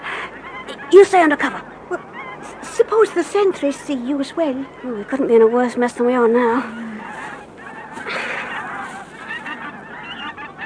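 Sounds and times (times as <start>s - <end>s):
flock of geese honking: 0.0s - 10.6s
speech: 0.9s - 2.0s, 2.9s - 6.8s.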